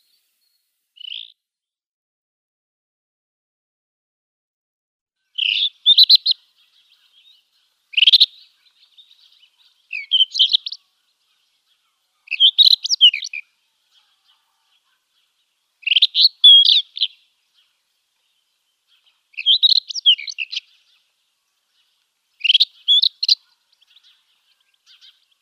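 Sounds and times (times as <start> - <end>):
rufous-tailed scrub robin song of sweet notes and warbled phrases: 1.0 - 1.3, 5.3 - 17.8, 18.4 - 25.4.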